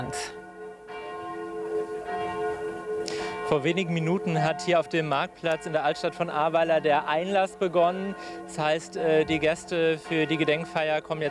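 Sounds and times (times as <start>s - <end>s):
speech: 0.0s - 0.4s, 3.5s - 11.3s
church bells ringing over a market square: 0.0s - 11.3s.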